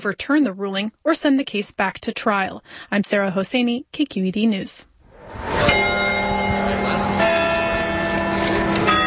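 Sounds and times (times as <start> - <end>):
speech: 0.0 - 6.0
campanile bells tolling notes matched to sea level readings: 5.1 - 9.0.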